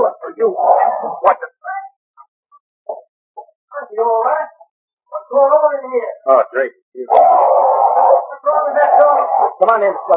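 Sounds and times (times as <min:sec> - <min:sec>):
speech: 0:00.4 - 0:01.4, 0:05.4 - 0:10.1
chained dog howling: 0:00.5 - 0:01.3, 0:07.1 - 0:10.1
chained dog barking: 0:07.1 - 0:09.6.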